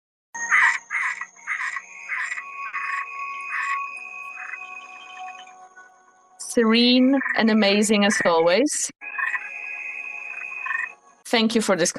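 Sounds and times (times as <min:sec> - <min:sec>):
insect-like whine: 0:00.4 - 0:06.2, 0:09.0 - 0:11.2
frog croaking: 0:00.5 - 0:05.5, 0:06.9 - 0:08.4, 0:09.0 - 0:11.0
speech: 0:06.6 - 0:09.1, 0:11.3 - 0:11.9.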